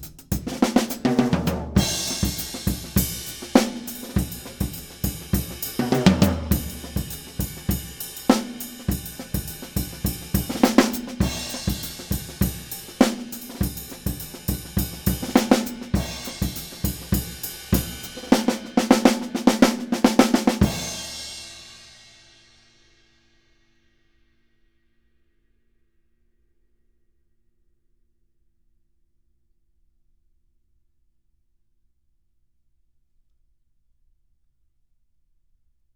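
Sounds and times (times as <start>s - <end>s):
drum hits in a dry studio: 0.4s - 21.1s.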